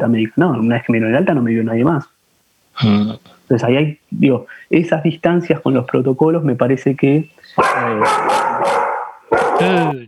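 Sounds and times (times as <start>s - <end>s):
speech: 0.0s - 2.2s, 2.8s - 10.0s
dog barking: 7.6s - 9.9s.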